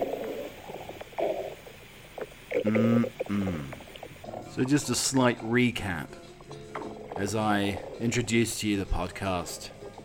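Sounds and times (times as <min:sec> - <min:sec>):
person chewing a moist breakfast burrito: 0:02.5 - 0:04.1
speech: 0:02.6 - 0:03.8, 0:04.5 - 0:06.3, 0:07.2 - 0:09.8.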